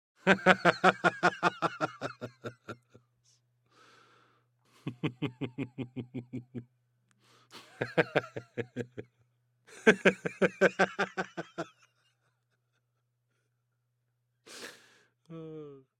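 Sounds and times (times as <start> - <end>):
middle-aged man laughing half-heartedly: 0.2 - 3.0, 4.8 - 6.7, 7.5 - 11.9.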